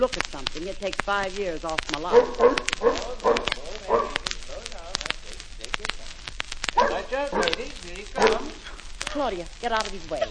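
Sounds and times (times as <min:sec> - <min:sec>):
speech: 0:00.0 - 0:04.2, 0:09.2 - 0:10.2
large lion-like dog barking: 0:02.0 - 0:04.4, 0:06.8 - 0:08.7.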